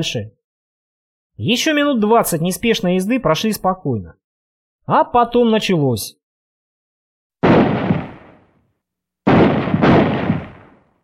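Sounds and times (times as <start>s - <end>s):
speech: 0.0s - 0.4s, 1.4s - 4.2s, 4.8s - 6.2s
distant muffled rifle shots with rolling echo: 7.4s - 8.4s, 9.3s - 10.9s.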